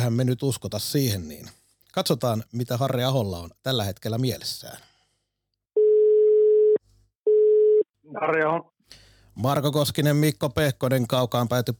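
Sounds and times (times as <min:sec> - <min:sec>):
speech: 0:00.0 - 0:04.9, 0:08.1 - 0:08.7, 0:09.4 - 0:11.7
outgoing phone call ringing tone: 0:05.8 - 0:07.9.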